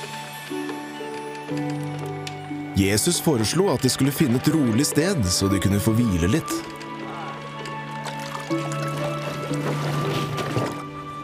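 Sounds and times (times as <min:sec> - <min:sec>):
speech: 0:01.5 - 0:02.1, 0:02.8 - 0:06.8
boat moving through water with a low droning hum: 0:06.6 - 0:11.2
water splashing and sloshing against a moving boat: 0:06.7 - 0:11.2.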